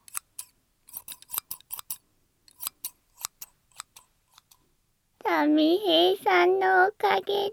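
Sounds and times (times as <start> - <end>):
scissors snipping in a drum-like rhythm: 0.0 - 4.6
speech: 5.4 - 7.5.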